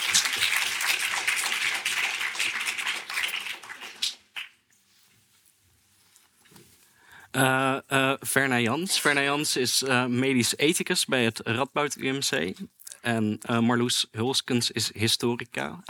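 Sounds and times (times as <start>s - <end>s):
audience applauding: 0.0s - 4.6s
speech: 7.4s - 15.8s.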